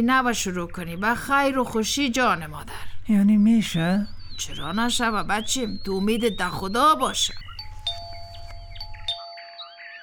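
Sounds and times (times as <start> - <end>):
speech: 0.0 - 7.5
faint chirping: 0.0 - 10.0
doorbell chiming at the door of a home: 7.6 - 10.0.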